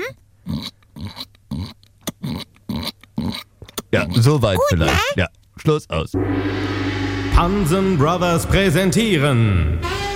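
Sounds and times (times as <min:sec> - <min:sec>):
human voice imitating a piglet with squeals and grunts: 0:00.0 - 0:05.2
speech: 0:03.9 - 0:06.8, 0:07.4 - 0:10.0.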